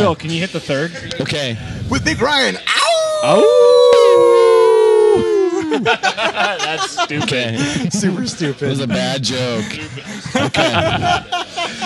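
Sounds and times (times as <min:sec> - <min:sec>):
speech: 0:00.0 - 0:04.3, 0:05.2 - 0:11.8
laughter: 0:02.6 - 0:11.8
several people howling in unison like wolves: 0:02.7 - 0:05.9.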